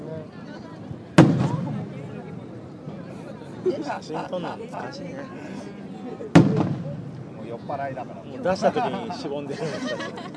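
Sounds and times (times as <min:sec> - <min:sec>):
faint noise: 0:00.0 - 0:10.3
single firework bursting with a crack and rumbling tail: 0:01.1 - 0:02.2, 0:06.4 - 0:07.4
laughter: 0:03.1 - 0:06.4, 0:08.4 - 0:10.3
speech: 0:03.6 - 0:10.3.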